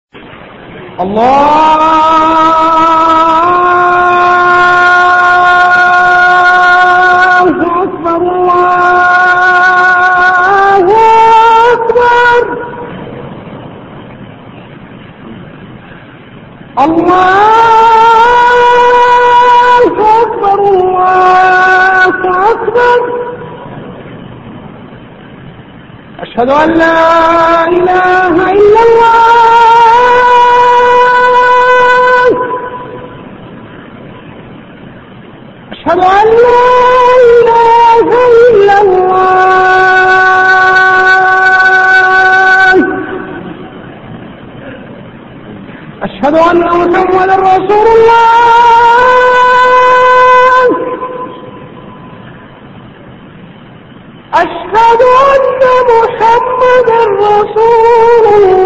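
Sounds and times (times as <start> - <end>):
adhan call to prayer in Medina: 0.5 - 58.6.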